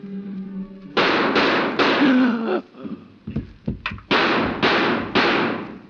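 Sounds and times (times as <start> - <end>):
gunshots: 1.0 - 2.2, 4.1 - 5.8.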